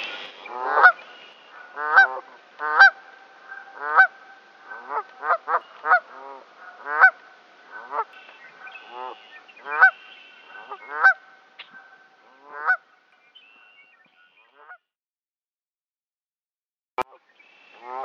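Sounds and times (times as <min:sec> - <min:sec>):
Canada goose giving loud nasal honks: 0:00.0 - 0:12.8, 0:17.8 - 0:18.0.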